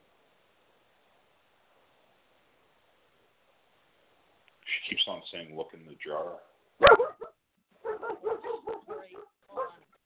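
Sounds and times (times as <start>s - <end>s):
speech: 4.8s - 7.1s
high-pitched puppy barks and yips: 6.2s - 9.2s.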